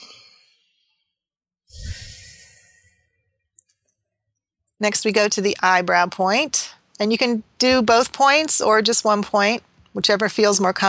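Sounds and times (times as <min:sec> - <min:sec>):
person taking a deep breath during a guided tapping exercise: 0:01.7 - 0:03.2
speech: 0:04.8 - 0:10.8.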